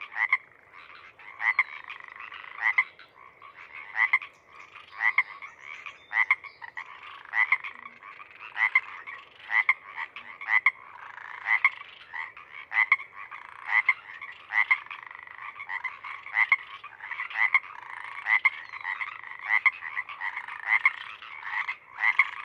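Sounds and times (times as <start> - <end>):
Pseudacris regilla Pacific chorus frogs croaking and ribbiting at sunset: 0.0 - 22.4.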